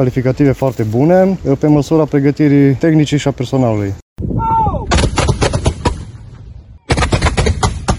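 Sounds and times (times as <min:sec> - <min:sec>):
speech: 0:00.0 - 0:04.0
live-fire gunfire during a battalion's military combat exercise: 0:04.9 - 0:06.2, 0:06.9 - 0:07.9.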